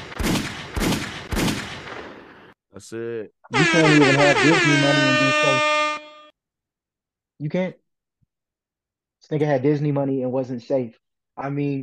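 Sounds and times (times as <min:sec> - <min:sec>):
loud gunshots: 0:00.0 - 0:02.3
speech: 0:02.8 - 0:05.8, 0:07.4 - 0:07.8, 0:09.2 - 0:11.8.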